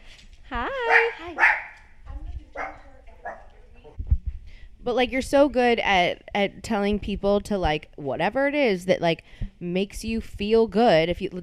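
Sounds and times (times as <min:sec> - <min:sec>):
dog barking: 0:00.8 - 0:01.9, 0:02.5 - 0:03.6
dog yelping: 0:00.9 - 0:01.9, 0:02.6 - 0:03.5
speech: 0:04.9 - 0:11.4.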